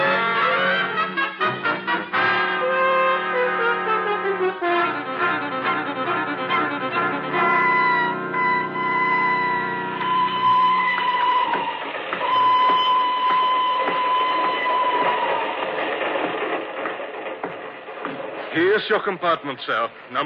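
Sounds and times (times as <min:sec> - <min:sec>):
train rolling steadily along the rails: 0:00.0 - 0:20.2
thin high metallic squeal of a train: 0:07.4 - 0:15.6
speech: 0:18.9 - 0:20.2.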